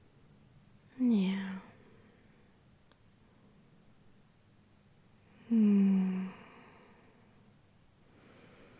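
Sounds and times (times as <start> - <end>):
slow exhale with a low snore-like hum: 5.3 - 7.4, 8.1 - 8.7.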